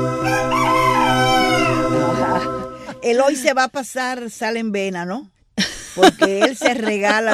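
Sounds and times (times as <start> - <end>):
rooster crowing: 0.2 - 3.0
laughter: 1.5 - 3.5, 5.6 - 7.3
speech: 3.1 - 5.4, 6.0 - 7.3.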